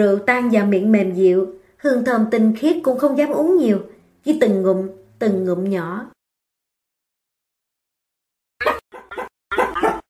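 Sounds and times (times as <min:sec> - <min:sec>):
speech: 0:00.0 - 0:06.2
small Akita dog yapping in a courtyard: 0:08.6 - 0:10.0.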